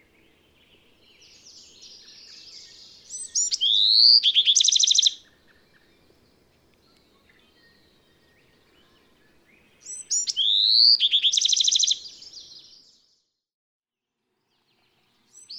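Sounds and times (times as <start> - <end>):
Bewick's wren song with rising whistled sweep and ringing trill: 0.0 - 6.4, 7.0 - 12.7.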